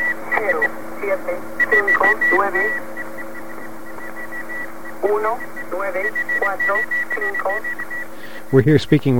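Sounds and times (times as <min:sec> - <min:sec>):
steady whistling tones from jamming interference: 0:00.0 - 0:00.8, 0:01.4 - 0:08.8
hissing static from jamming interference: 0:00.0 - 0:09.1
garbled voice on a shortwave radio station: 0:00.2 - 0:02.8, 0:05.0 - 0:07.6, 0:08.3 - 0:09.1
speech: 0:01.0 - 0:02.9, 0:05.0 - 0:07.8, 0:08.5 - 0:09.1.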